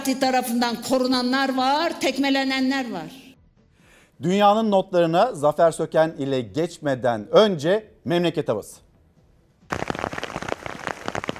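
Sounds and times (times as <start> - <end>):
speech: 0.1 - 3.2, 4.2 - 8.8
rain pouring on a hard surface: 9.7 - 11.3.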